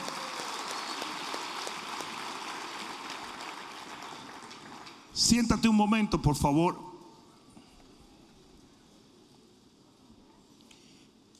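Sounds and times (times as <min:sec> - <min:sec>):
audience applauding at a church service: 0:00.0 - 0:05.2
speech: 0:05.2 - 0:06.9.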